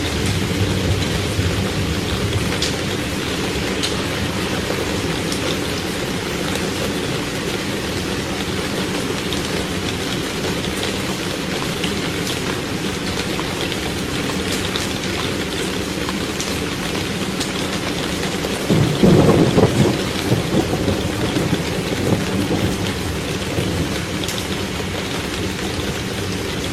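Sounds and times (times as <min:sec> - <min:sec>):
deep rumble of powerful thunder at night: 0:00.0 - 0:09.6, 0:18.5 - 0:26.7
heavy rain pouring on a roof at night: 0:00.0 - 0:26.7.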